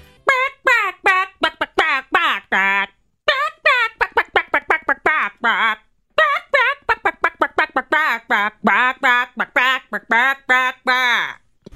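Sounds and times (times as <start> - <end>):
person clucking out a song like a chicken for a name-that-song game: 0.3 - 11.4.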